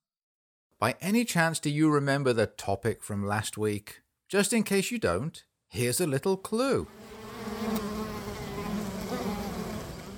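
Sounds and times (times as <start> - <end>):
speech: 0.8 - 7.8
bees buzzing: 6.9 - 10.1.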